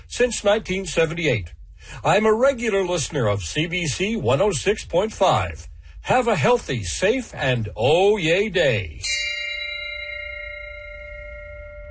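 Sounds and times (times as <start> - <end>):
low rumbling background: 0.0 - 11.8
speech: 0.1 - 9.4
single bell tone ringing: 9.0 - 11.8.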